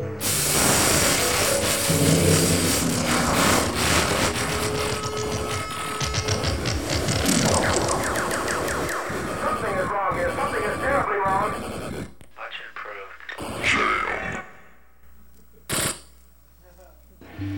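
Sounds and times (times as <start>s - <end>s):
cable TV interference static hiss: 0.0s - 17.4s
rapid stuttering pulses: 1.1s - 12.2s
warbling electronic squeals: 1.9s - 11.1s.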